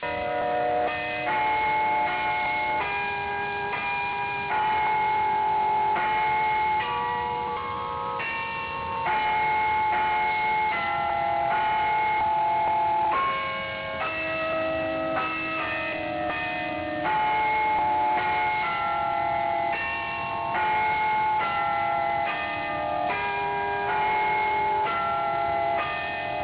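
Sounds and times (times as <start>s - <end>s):
Boston chime bell: 0.0s - 26.4s.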